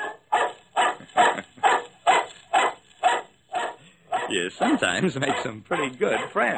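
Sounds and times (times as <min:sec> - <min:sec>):
dog barking: 0:00.0 - 0:06.5
laughter: 0:01.0 - 0:01.9, 0:04.6 - 0:06.2
speech: 0:04.3 - 0:06.5.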